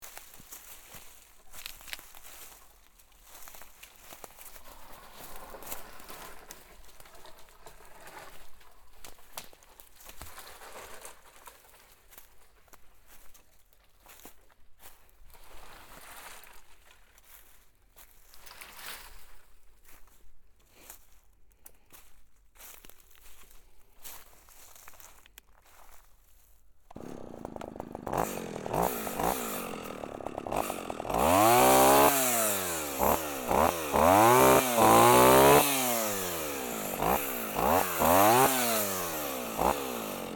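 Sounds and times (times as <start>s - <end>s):
chopping firewood: 26.9s - 40.3s.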